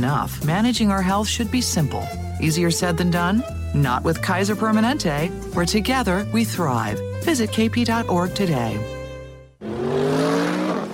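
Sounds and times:
speech: 0:00.0 - 0:09.0
2015 Mercedes-Benz CLA engine roaring accelerating out of a hairpin turn: 0:09.6 - 0:10.9.

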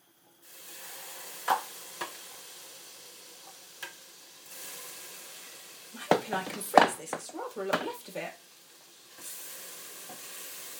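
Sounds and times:
curry paste sizzling in a pot as it cooks down: 0:00.0 - 0:10.7
speech: 0:06.3 - 0:08.4.

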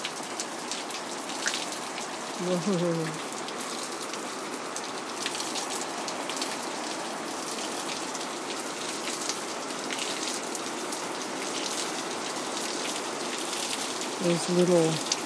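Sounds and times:
heavy rain on a roof on a windy night: 0:00.0 - 0:15.2
person exclaiming: 0:02.4 - 0:03.2
speech: 0:02.4 - 0:03.3, 0:14.2 - 0:15.1.

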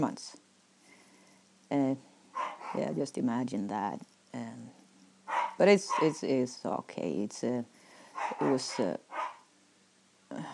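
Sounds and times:
speech: 0:00.0 - 0:00.4, 0:01.7 - 0:02.1, 0:02.7 - 0:04.1, 0:05.6 - 0:09.0
dogs barking and yelping while playing: 0:02.4 - 0:02.9, 0:05.3 - 0:06.2, 0:08.1 - 0:09.5.

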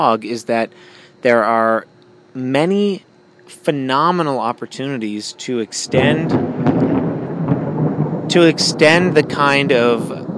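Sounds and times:
speech: 0:00.0 - 0:06.6, 0:08.3 - 0:10.2
thunder from a dry thunderstorm with no rain in Windsor: 0:05.8 - 0:10.3.

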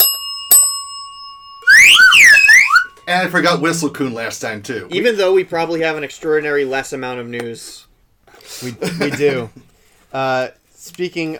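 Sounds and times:
small news bell ringing: 0:00.0 - 0:03.8
loud warbling burst: 0:01.7 - 0:03.0
speech: 0:03.1 - 0:07.9, 0:08.5 - 0:11.3.

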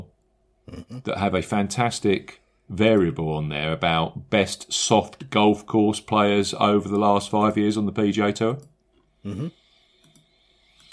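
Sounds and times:
low hum: 0:00.0 - 0:10.9
speech: 0:00.9 - 0:09.6
computer mouse clicking at a desk: 0:10.0 - 0:10.9.

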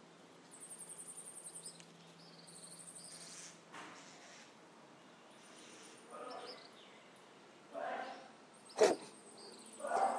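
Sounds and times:
birds chirping on a warm morning around sunrise in Minneapolis Valley: 0:00.2 - 0:03.5, 0:05.2 - 0:10.1
person sneezing: 0:08.8 - 0:09.1.

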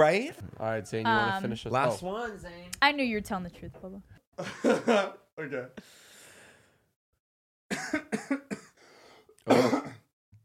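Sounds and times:
speech: 0:00.0 - 0:06.0, 0:07.8 - 0:08.6, 0:09.5 - 0:09.8
faint breathy noise: 0:05.8 - 0:06.9, 0:08.8 - 0:09.4
person coughing nervously: 0:07.7 - 0:08.8, 0:09.5 - 0:10.1
throat clearing: 0:09.5 - 0:10.1.

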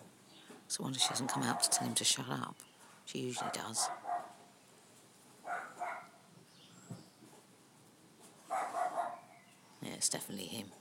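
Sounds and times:
speech: 0:00.7 - 0:04.1, 0:10.0 - 0:10.7
Cavalier King Charles Spaniel barking: 0:01.0 - 0:02.0, 0:03.4 - 0:04.4, 0:05.4 - 0:06.2, 0:08.5 - 0:09.3.

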